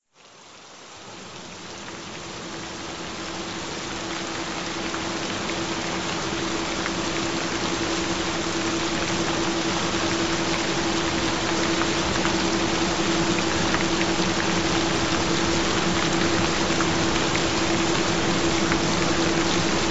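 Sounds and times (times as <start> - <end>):
gentle rain: 0.0 - 19.8.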